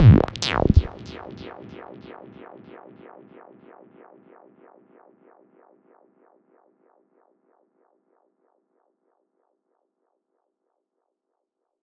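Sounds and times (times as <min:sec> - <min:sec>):
squelchy psytrance synth in C: 0:00.0 - 0:01.0.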